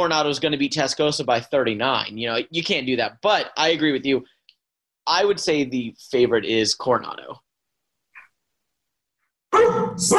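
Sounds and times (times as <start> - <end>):
speech: 0.0 - 4.3, 5.1 - 7.4, 9.5 - 10.1
dog barking: 9.5 - 10.1.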